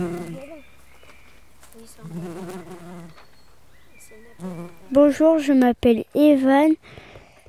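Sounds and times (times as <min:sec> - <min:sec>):
bumblebee buzzing: 0:00.0 - 0:00.6, 0:01.8 - 0:03.2, 0:04.0 - 0:05.4
faint outdoor noise: 0:00.0 - 0:07.4
speech: 0:05.0 - 0:07.0.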